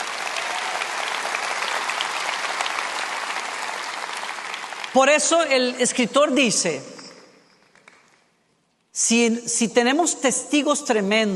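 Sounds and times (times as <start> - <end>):
audience applause: 0.0 - 5.0
speech: 4.9 - 7.0, 9.0 - 11.3.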